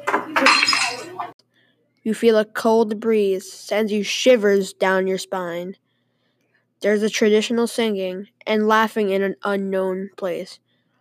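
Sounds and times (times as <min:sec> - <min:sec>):
glass object shattering with tinkling fragments scattering: 0:00.4 - 0:01.2
speech: 0:02.0 - 0:05.8, 0:06.8 - 0:10.6.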